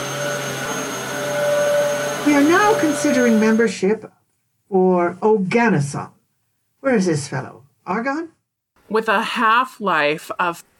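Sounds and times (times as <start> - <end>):
vacuum cleaner droning with motor whine: 0.0 - 3.9
speech: 2.2 - 6.2, 6.8 - 10.7.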